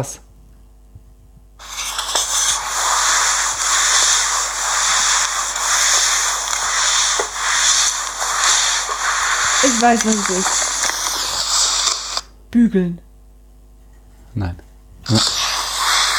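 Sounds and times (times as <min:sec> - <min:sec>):
speech: 0:00.0 - 0:00.3, 0:09.8 - 0:10.7, 0:12.5 - 0:13.1, 0:14.4 - 0:15.3
mop scrubbing a floor: 0:01.6 - 0:12.1, 0:15.2 - 0:16.1.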